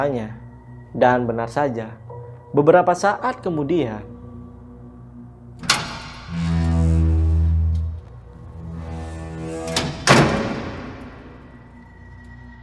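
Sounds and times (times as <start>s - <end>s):
speech: 0.0s - 4.1s
low rumbling drone: 4.0s - 12.6s
door of a factory waste area slamming shut: 5.6s - 6.7s, 8.8s - 11.8s.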